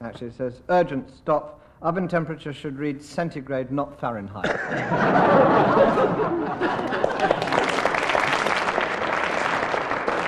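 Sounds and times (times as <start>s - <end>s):
speech: 0.0s - 7.6s
crowd laughing: 4.4s - 10.2s
studio audience applause: 6.5s - 10.2s.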